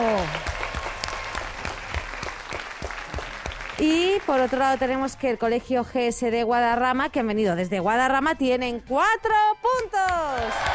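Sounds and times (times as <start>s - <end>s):
audience applauding: 0.0s - 5.0s, 10.3s - 10.7s
speech: 3.8s - 10.7s.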